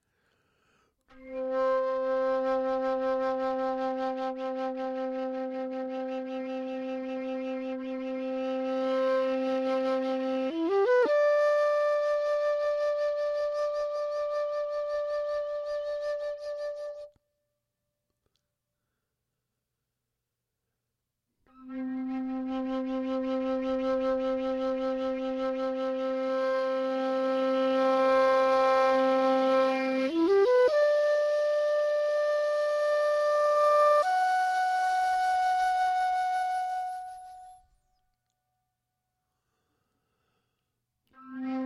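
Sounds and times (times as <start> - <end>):
flute playing without echo: 1.1 - 17.2, 21.5 - 38.0, 41.2 - 41.6.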